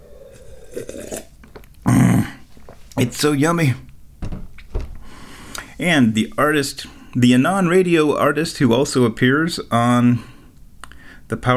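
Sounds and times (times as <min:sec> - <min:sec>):
soft slurp of hot tea: 0:00.0 - 0:02.3
louder throaty gulp or swallow: 0:00.0 - 0:02.5
speech: 0:03.0 - 0:03.8, 0:05.8 - 0:10.3, 0:11.3 - 0:11.5.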